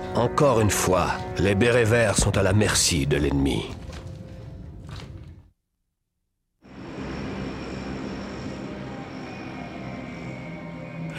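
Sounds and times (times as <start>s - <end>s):
speech: 0.2s - 3.8s
B-52 bomber engines roaring overhead: 6.7s - 11.1s.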